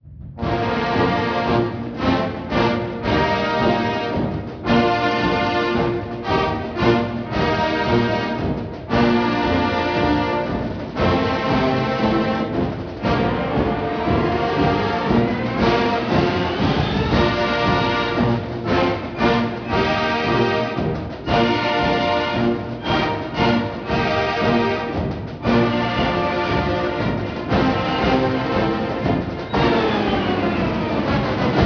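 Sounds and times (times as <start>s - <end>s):
grand march music: 0.1s - 31.6s.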